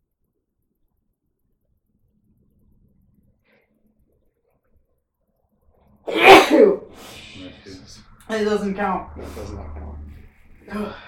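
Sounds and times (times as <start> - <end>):
speech: 6.1 - 7.1, 7.7 - 9.8, 10.7 - 11.0
person sneezing: 6.1 - 7.4.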